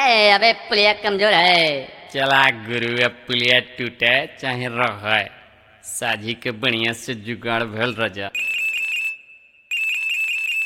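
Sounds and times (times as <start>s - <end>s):
speech: 0.0s - 8.5s
telephone ringtone signalling an incoming call: 8.4s - 10.6s.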